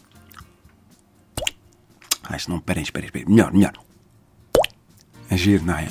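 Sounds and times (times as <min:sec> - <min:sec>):
water droplets plopping into a bucket: 0:01.4 - 0:01.6, 0:04.6 - 0:04.8
speech: 0:02.3 - 0:03.9, 0:05.3 - 0:05.8.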